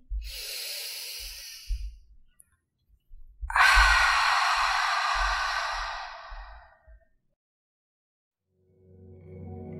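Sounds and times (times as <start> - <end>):
breathing in and out: 0.0 - 2.1, 3.5 - 6.9.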